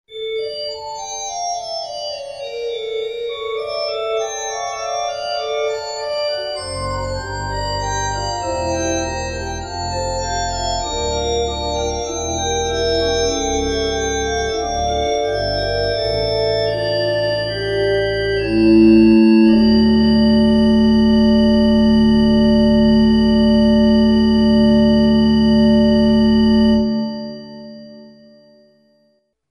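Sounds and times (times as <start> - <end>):
church organ: 0.1 - 29.0.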